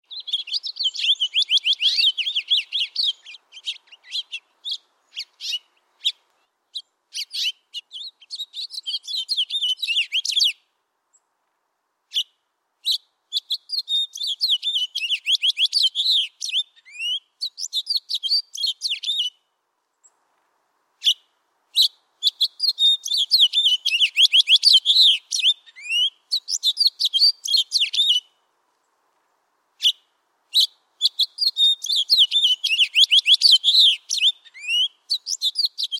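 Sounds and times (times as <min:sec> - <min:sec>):
house finch calling: 0:00.1 - 0:10.6, 0:12.8 - 0:19.3, 0:21.8 - 0:28.2, 0:30.6 - 0:35.9.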